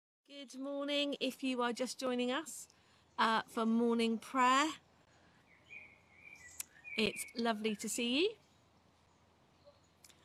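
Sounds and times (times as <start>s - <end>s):
speech: 0.3s - 4.8s, 7.0s - 8.4s
birds whistling and chirping in a garden: 2.8s - 10.2s.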